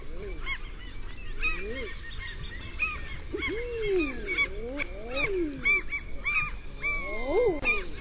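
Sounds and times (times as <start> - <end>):
common eider cooing calls: 0.0 - 7.9.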